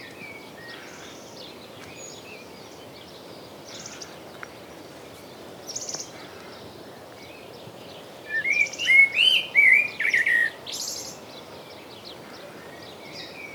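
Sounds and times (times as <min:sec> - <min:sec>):
common blackbird Turdus merula singing fluty warbled phrase: 0:08.3 - 0:11.2.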